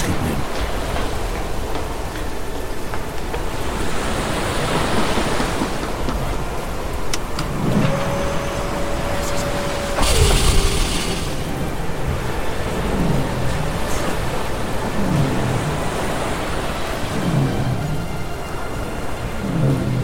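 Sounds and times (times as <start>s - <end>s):
huge ocean waves crashing: 0.0s - 20.0s
thin sustained tone: 7.6s - 14.4s.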